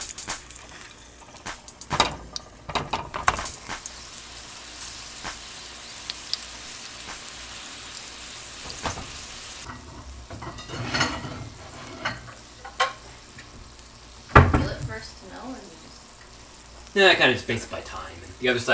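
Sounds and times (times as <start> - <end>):
food sizzling in a hot pan: 0.0 - 18.7
speech: 17.0 - 18.7.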